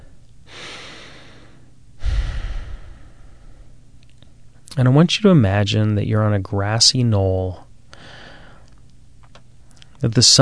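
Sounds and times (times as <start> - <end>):
deep breath in during a relaxation exercise: 0.5 - 3.8, 8.0 - 8.6
speech: 4.8 - 7.6, 10.0 - 10.4.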